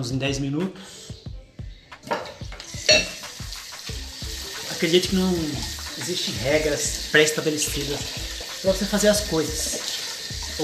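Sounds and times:
speech: 0:00.0 - 0:01.2, 0:04.8 - 0:09.8
crockery knocking and clinking while washing dishes at a sink: 0:02.0 - 0:03.2
running water at a sink while washing dishes: 0:02.4 - 0:10.6.

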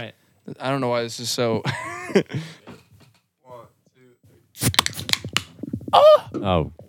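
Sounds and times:
speech: 0:00.0 - 0:02.6, 0:06.0 - 0:06.8
aluminum cans of yerba mate energy tea cracked open: 0:04.6 - 0:05.6.

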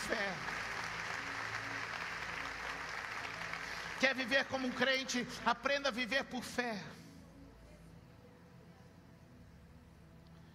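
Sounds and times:
large audience applauding: 0:00.0 - 0:05.1
faint low musical hum: 0:00.0 - 0:10.5
speech: 0:04.0 - 0:07.0.

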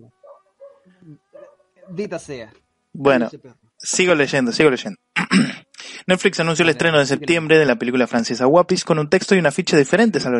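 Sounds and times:
dog giving short sharp barks: 0:00.2 - 0:02.1
speech: 0:01.9 - 0:05.5, 0:06.1 - 0:10.3.

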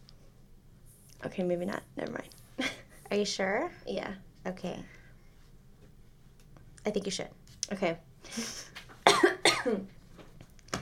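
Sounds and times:
speech: 0:01.2 - 0:05.0, 0:06.8 - 0:08.7, 0:09.6 - 0:10.0
person clearing throat: 0:09.1 - 0:09.9.

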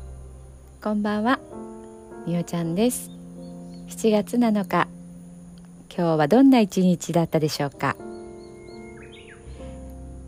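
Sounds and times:
Japanese bush warbler singing: 0:00.0 - 0:10.2
speech: 0:00.8 - 0:01.6, 0:02.3 - 0:03.2, 0:03.9 - 0:04.9, 0:06.0 - 0:08.0
faint bird chirps: 0:01.3 - 0:05.2, 0:06.8 - 0:10.0.

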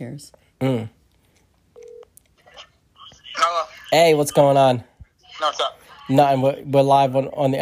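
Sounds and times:
speech: 0:00.0 - 0:01.0, 0:03.4 - 0:07.5
soft noise: 0:00.0 - 0:07.5
electronic phone ringing tone: 0:01.8 - 0:04.0.

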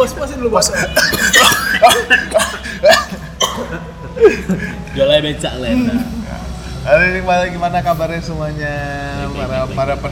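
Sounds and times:
speech: 0:00.0 - 0:03.1, 0:04.2 - 0:06.2, 0:06.8 - 0:10.0
person coughing: 0:00.8 - 0:04.4
laughter: 0:01.6 - 0:06.6.

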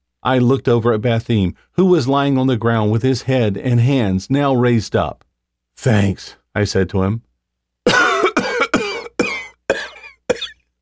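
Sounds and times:
speech: 0:00.2 - 0:07.3
harsh hacking coughing fit: 0:07.9 - 0:10.7.

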